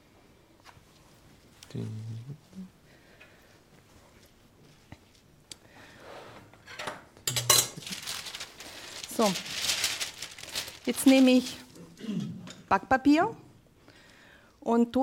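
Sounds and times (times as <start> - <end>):
speech: 1.7 - 2.8, 9.2 - 9.6, 10.9 - 11.6, 12.7 - 13.4, 14.6 - 15.0
dishes and cutlery clattering while food is prepared: 6.7 - 7.9
scraping and rattling of dishes: 7.4 - 11.6.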